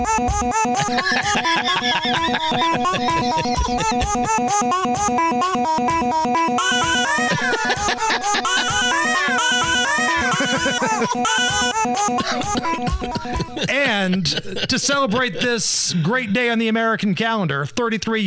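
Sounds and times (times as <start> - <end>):
rock riff built from chopped-up newborn baby coos, squeals and giggles: 0.0 - 13.7
speech: 0.0 - 18.2
laughter: 0.6 - 4.5, 6.9 - 16.6.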